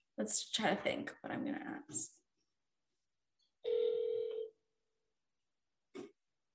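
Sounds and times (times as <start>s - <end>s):
speech: 0.2s - 2.2s
telephone ringback tone over the phone line: 3.6s - 4.5s.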